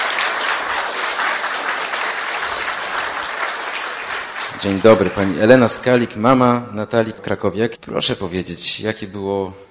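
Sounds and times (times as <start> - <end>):
large audience applauding at an event in a museum of coins and medals: 0.0 - 5.6
speech: 4.6 - 9.6.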